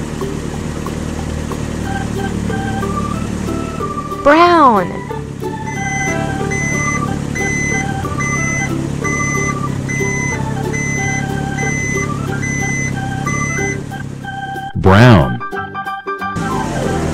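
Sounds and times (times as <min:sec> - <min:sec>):
blue truck engine drone: 0:00.0 - 0:17.1
speech: 0:04.2 - 0:05.0
electronic beeps: 0:05.7 - 0:14.0.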